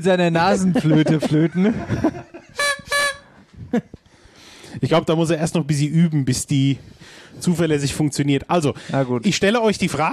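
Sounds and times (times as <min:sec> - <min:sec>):
speech: 0:00.0 - 0:02.3, 0:03.7 - 0:04.0, 0:04.8 - 0:10.1
laughter: 0:00.5 - 0:03.1
toy horns tooted at a quiz game: 0:02.6 - 0:03.3.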